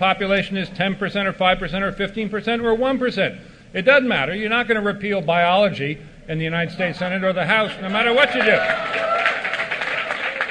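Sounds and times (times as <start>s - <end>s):
speech: 0.0s - 9.1s
audience applause after a speech: 7.6s - 10.4s.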